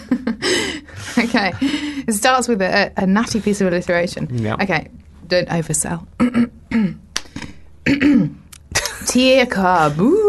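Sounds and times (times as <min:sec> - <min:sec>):
breaths: 0:00.4 - 0:02.1
speech: 0:01.2 - 0:07.0, 0:09.2 - 0:10.2
person clearing throat: 0:06.2 - 0:07.1, 0:07.8 - 0:08.9.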